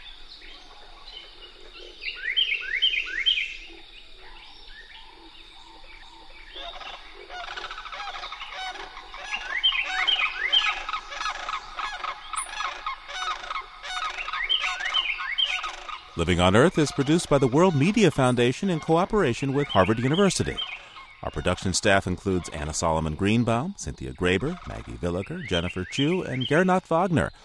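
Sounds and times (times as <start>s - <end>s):
Carolina wren repeating bright downslurred notes: 0.0s - 27.4s
sandhill cranes guttural rattling courtship duet in a marsh: 5.0s - 23.0s, 24.3s - 26.2s
speech: 16.2s - 27.4s.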